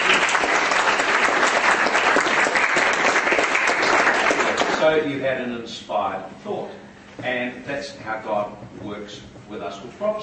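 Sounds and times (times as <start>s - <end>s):
audience clapping steadily: 0.0s - 5.0s
speech: 4.9s - 10.2s.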